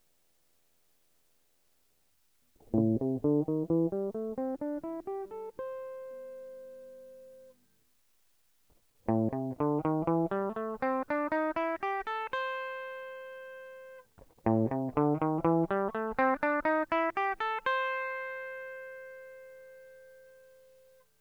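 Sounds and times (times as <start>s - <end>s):
guitar tone: 2.7s - 7.6s, 9.1s - 21.0s.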